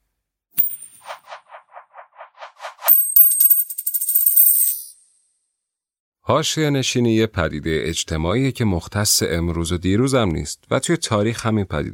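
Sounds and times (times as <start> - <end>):
coin striking, bouncing and spinning on a hard surface: 0.6 - 5.0
speech: 6.3 - 11.9.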